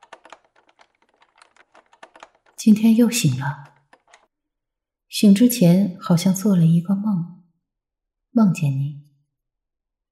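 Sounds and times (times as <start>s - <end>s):
typing on a computer keyboard with an index finger: 0.0s - 2.9s, 3.6s - 4.3s
speech: 2.6s - 3.7s, 5.2s - 7.4s, 8.4s - 9.0s.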